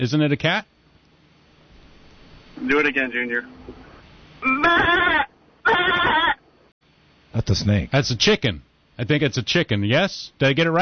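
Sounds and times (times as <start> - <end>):
speech: 0.0 - 0.7, 2.6 - 3.8, 4.4 - 5.2, 7.4 - 10.8
goat bleating on a farm: 4.4 - 6.4.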